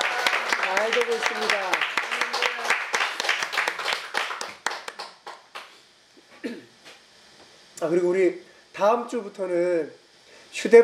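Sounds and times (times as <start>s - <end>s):
church congregation applauding during a worship service: 0.0s - 5.8s
speech: 0.9s - 1.9s, 7.8s - 10.8s.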